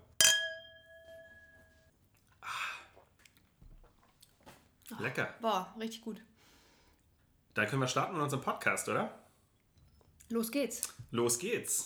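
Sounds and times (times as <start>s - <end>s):
wine glasses clinking in a toast: 0.0s - 1.8s
speech: 5.0s - 6.3s, 7.6s - 9.2s, 10.3s - 11.8s.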